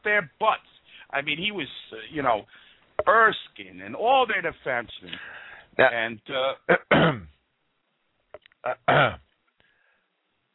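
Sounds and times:
speech: 0.0 - 7.4, 8.6 - 9.2
voiced throat clearing: 6.7 - 7.3, 8.6 - 9.3.

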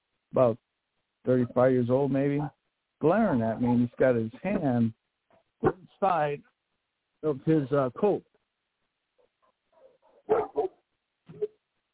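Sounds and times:
speech: 0.3 - 5.0, 5.6 - 6.5, 7.2 - 8.3
dog barking: 9.8 - 10.8.

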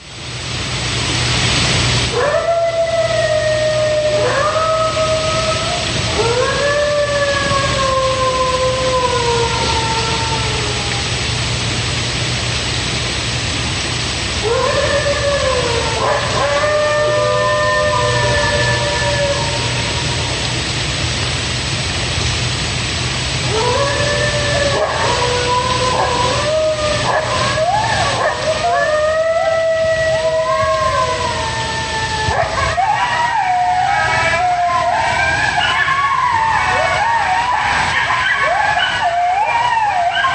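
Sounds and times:
steady low hum and hiss: 0.0 - 40.3
coyotes howling: 2.1 - 11.2, 14.4 - 20.5, 23.5 - 40.3.

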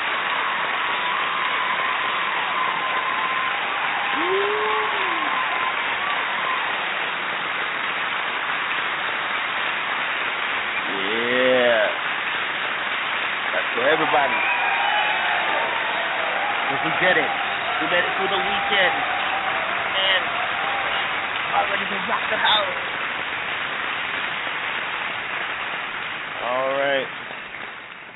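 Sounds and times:
cheer: 0.0 - 8.2, 10.8 - 12.0, 13.4 - 23.0, 26.4 - 27.1
crowd applause: 0.0 - 28.1
person whooping: 2.5 - 5.7, 14.2 - 21.3.

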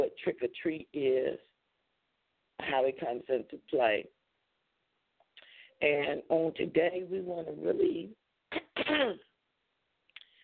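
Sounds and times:
speech: 0.2 - 1.5, 2.6 - 4.2, 5.8 - 9.3
person clearing throat: 8.5 - 9.2.

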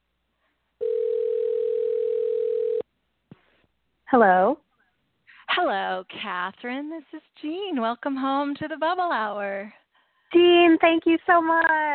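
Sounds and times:
telephone dial tone while dialing a number: 0.8 - 2.8
speech: 4.1 - 4.6, 5.6 - 11.9.

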